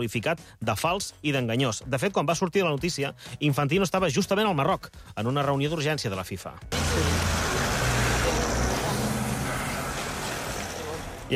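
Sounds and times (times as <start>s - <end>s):
speech: 0.0s - 7.4s
road noise: 6.6s - 11.3s
car engine rumbling as the vehicle pulls away: 6.7s - 11.3s.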